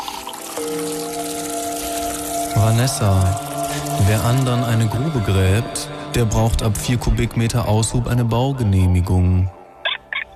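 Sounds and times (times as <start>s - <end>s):
water poured from a kettle onto tea: 0.0s - 7.0s
speech: 0.6s - 1.2s, 2.6s - 9.6s.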